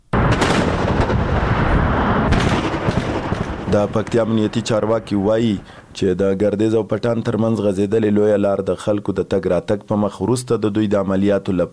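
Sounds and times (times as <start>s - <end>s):
gunfire during a security operation to reopen roads in Paktia: 0.1s - 5.8s
speech: 3.7s - 11.7s.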